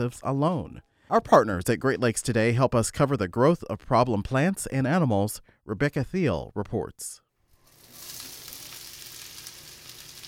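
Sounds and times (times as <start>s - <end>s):
speech: 0.0s - 7.2s
frying pan sizzling: 7.5s - 10.2s.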